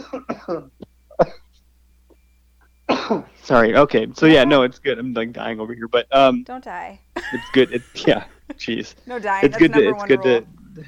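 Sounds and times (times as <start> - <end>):
person coughing: 0.0 - 1.5, 2.9 - 3.3
speech: 0.1 - 1.4, 3.1 - 10.8
laughter: 7.2 - 10.8.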